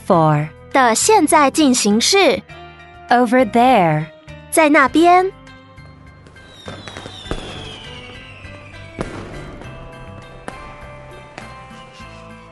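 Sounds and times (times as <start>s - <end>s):
speech: 0.1s - 5.4s
fireworks bursting with pops and crackles: 6.2s - 12.1s
descending firework whistle: 6.4s - 9.6s.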